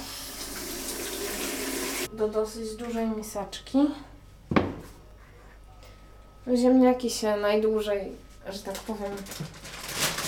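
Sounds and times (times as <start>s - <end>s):
water running from a tap into a large bowl for potatoes: 0.0s - 2.1s
speech: 2.2s - 4.7s, 6.4s - 9.7s.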